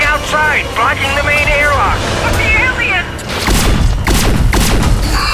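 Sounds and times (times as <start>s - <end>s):
speech: 0.1s - 3.2s
weapon fire outside a spaceship airlock: 3.3s - 5.2s.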